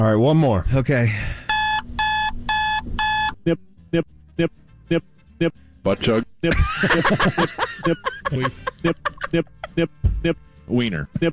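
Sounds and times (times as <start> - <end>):
speech: 0.0 - 1.4, 3.4 - 11.3
alarm clock beeping: 1.5 - 3.4
laughter: 6.4 - 9.9.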